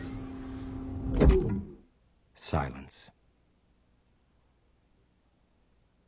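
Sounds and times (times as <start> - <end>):
mechanical clunk of a sliding door sealing shut: 0.0 - 1.8
sliding door electric motor hum: 0.0 - 1.8
speech: 2.5 - 3.1.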